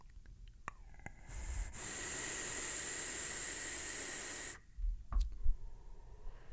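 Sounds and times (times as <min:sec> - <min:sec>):
breathy puffs of exhaling vapor: 0:01.2 - 0:04.7
inhaling vapor from an RDA on a mech mod vape: 0:01.2 - 0:04.7.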